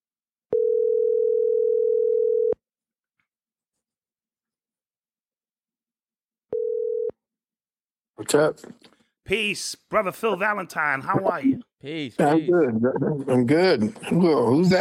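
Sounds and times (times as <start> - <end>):
telephone tone while placing a call: 0.5 - 2.6, 6.5 - 7.2
speech: 8.2 - 14.7.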